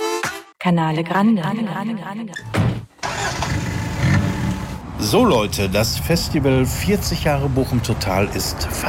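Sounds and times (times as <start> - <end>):
speech: 0.6 - 2.7, 5.0 - 8.8
car engine cranking and starting: 2.8 - 6.1.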